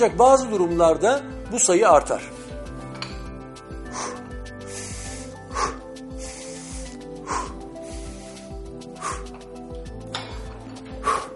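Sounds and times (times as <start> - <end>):
speech: 0.0 - 2.4
rapid heavy breathing of a person after exercise: 3.6 - 11.3.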